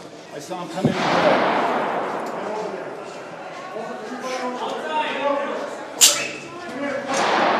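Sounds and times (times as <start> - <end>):
voices and commotion: 0.0 - 7.5
speech: 0.4 - 2.2
gunshots in a reverberant parliament building: 0.9 - 3.2, 7.1 - 7.5.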